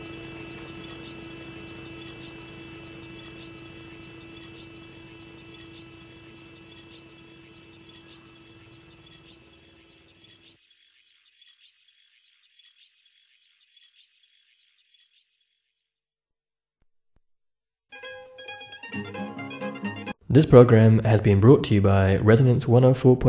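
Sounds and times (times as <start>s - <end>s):
wintering honeybee cluster droning hum: 0.0s - 10.5s
speech: 18.0s - 18.3s, 19.0s - 23.2s.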